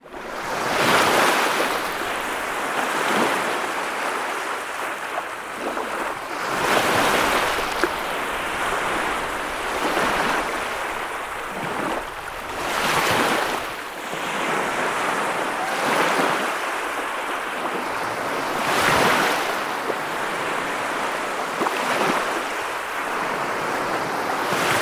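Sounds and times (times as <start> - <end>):
sea waves: 0.0 - 24.8.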